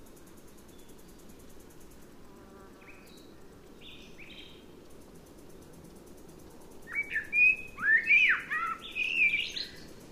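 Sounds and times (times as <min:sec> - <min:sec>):
Eurasian blackbird Turdus merula singing: 0:06.9 - 0:09.8.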